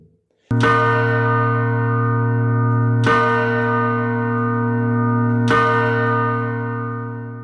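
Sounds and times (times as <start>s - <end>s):
church bell striking the hour: 0.5s - 7.4s.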